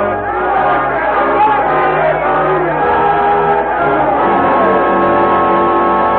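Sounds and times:
angry crowd chanting and shouting: 0.0 - 6.0.

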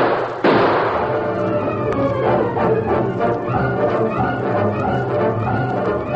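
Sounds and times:
gunshot in a confrontation inside a bank: 0.0 - 1.2
dense noisy din: 0.0 - 6.1.

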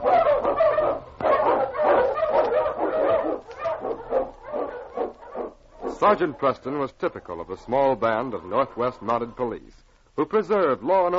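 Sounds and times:
husky sled dog barking and yipping: 0.0 - 6.5
speech: 6.0 - 11.1.

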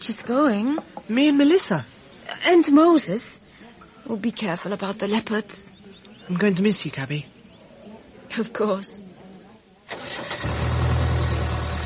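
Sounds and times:
speech: 0.0 - 3.4, 4.1 - 5.7, 6.3 - 7.3, 8.3 - 9.1
car engine cranking and starting: 9.9 - 11.8.

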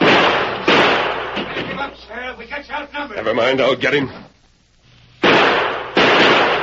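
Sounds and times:
gunshots in a shootout: 0.0 - 2.0, 5.2 - 6.6
speech: 2.3 - 4.3.

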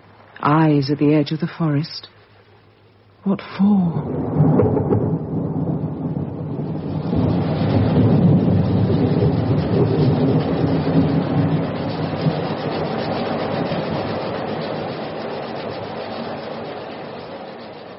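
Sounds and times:
constant wash of rain-like noise: 0.0 - 17.9
speech: 0.4 - 2.2, 3.2 - 4.9
deep rolling thunder in a thunderstorm: 3.9 - 17.3.

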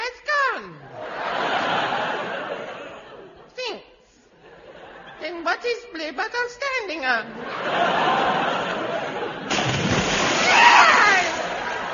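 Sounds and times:
laughter: 0.9 - 3.5, 4.4 - 5.2, 7.3 - 11.9
speech: 5.6 - 8.3
splash of someone falling into water: 9.5 - 11.9.

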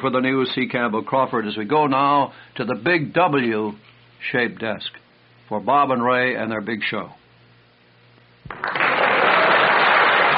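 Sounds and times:
speech: 0.0 - 7.2
studio audience applauding: 8.5 - 10.3.

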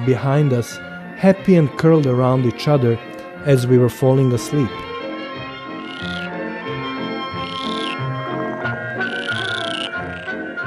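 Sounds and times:
speech: 0.0 - 4.9
dense chorus of frogs croaking with rising trills: 5.8 - 6.5, 7.3 - 8.1, 9.0 - 10.6.

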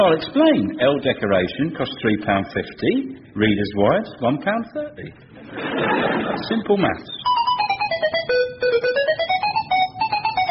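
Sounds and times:
speech: 0.0 - 7.2
laughter: 5.4 - 6.7
mobile phone ringing with an electronic melody: 7.2 - 10.5.

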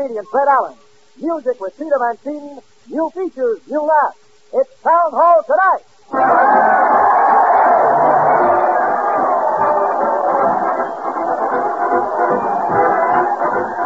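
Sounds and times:
speech: 0.0 - 7.2
large crowd cheering and shouting at a parade: 6.1 - 13.8.

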